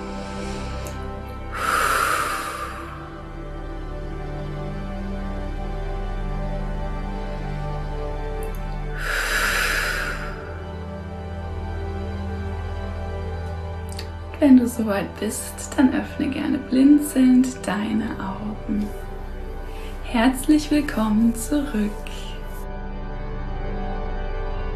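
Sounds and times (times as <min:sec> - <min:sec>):
deep breathing in through nose and out through mouth: 0:00.0 - 0:04.3, 0:08.4 - 0:11.5, 0:18.9 - 0:20.1
quiet sustained tonal background: 0:00.0 - 0:24.7
speech: 0:14.4 - 0:19.0, 0:20.1 - 0:22.2.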